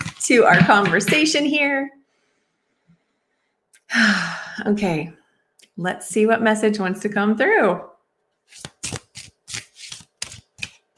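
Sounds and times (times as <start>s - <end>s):
speech: 0.3s - 2.0s, 3.9s - 5.2s, 5.8s - 7.9s, 8.5s - 8.7s
brand-new slippery deck of playing cards shuffled: 8.5s - 10.9s.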